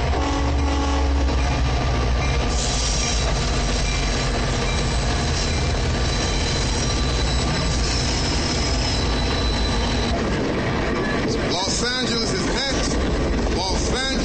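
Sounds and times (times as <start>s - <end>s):
Amtrak passenger train rumble pulling into a station: 0.0s - 14.2s
train metallic wheel squeal: 2.6s - 10.2s.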